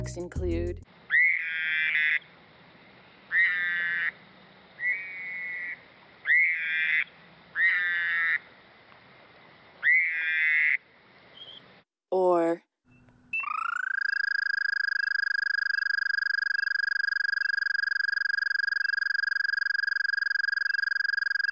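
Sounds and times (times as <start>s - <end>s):
speech: 0.0s - 1.0s
toad mating calls: 1.1s - 2.3s, 3.3s - 8.6s, 9.8s - 11.6s, 13.3s - 21.5s.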